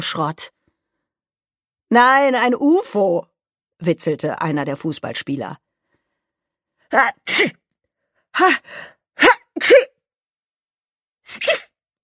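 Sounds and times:
speech: 0.0 - 0.6, 1.9 - 5.6, 6.9 - 7.6, 8.4 - 9.9, 11.3 - 11.6
person sneezing sharply: 9.2 - 10.0, 11.3 - 11.7.

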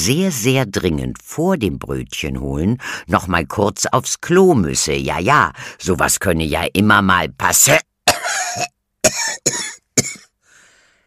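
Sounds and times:
speech: 0.0 - 9.7
faint trailing breath: 2.8 - 3.1, 5.6 - 5.8, 10.4 - 11.0
man's coughing fit after choking: 8.1 - 10.3.

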